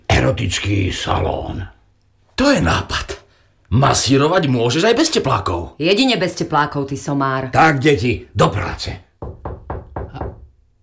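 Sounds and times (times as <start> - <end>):
speech: 0.2 - 1.8, 2.4 - 3.1, 3.7 - 9.1
knocking on a door: 9.2 - 10.6.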